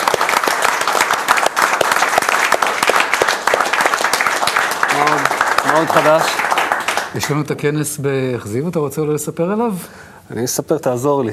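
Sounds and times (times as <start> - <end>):
audience applause: 0.0 - 7.4
speech: 5.8 - 6.4, 7.1 - 11.3.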